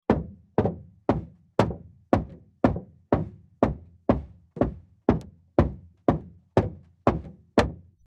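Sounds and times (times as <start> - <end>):
metal footsteps: 0.1 - 8.0.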